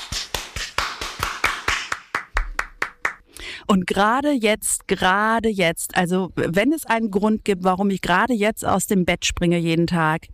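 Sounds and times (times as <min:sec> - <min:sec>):
applause: 0:00.0 - 0:03.2
sharp claps from one or a few people: 0:00.0 - 0:03.2
speech: 0:03.7 - 0:10.3.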